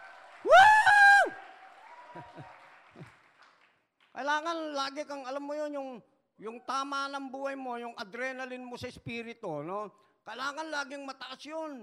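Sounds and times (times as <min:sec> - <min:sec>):
short voiced shouts or cheers: 0:00.0 - 0:02.4
congregation clapping steadily: 0:00.0 - 0:04.7
speech: 0:04.2 - 0:11.8.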